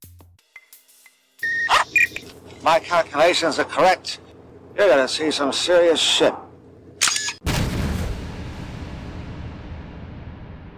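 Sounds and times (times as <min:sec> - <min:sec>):
speech: 0:02.6 - 0:04.2, 0:04.8 - 0:06.4
explosion sound effect with sharp crack and deep boom: 0:07.4 - 0:10.7.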